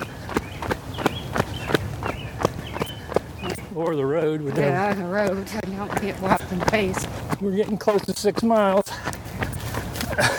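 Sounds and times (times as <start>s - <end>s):
running footsteps on grass: 0.0s - 10.3s
speech: 3.8s - 8.9s, 10.2s - 10.3s.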